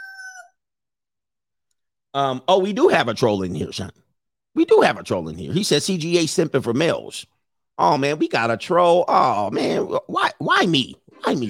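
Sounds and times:
rooster crowing: 0.0 - 0.6
speech: 2.1 - 4.0, 4.6 - 11.4.

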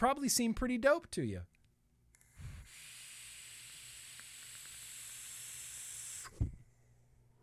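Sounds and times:
speech: 0.0 - 1.6
vape coil on RDA firing a dry hit: 2.2 - 6.4.

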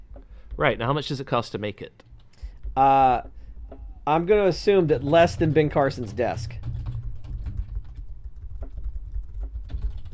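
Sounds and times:
speech: 0.6 - 2.1, 2.8 - 3.4, 4.0 - 6.6
typing on a computer keyboard: 5.7 - 10.1.

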